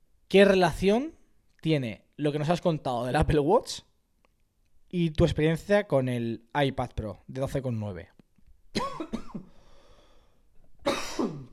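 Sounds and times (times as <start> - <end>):
speech: 0.3 - 3.9, 4.9 - 8.1
person coughing after choking on pizza: 8.8 - 9.5, 10.8 - 11.5
faint breathing: 9.5 - 10.5.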